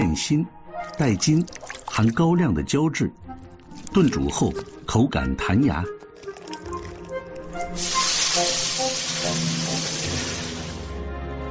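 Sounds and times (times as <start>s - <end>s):
soft music: 0.0s - 11.5s
speech: 0.2s - 3.2s, 3.9s - 6.0s
ginger and scallions sizzling in hot oil: 6.2s - 10.9s.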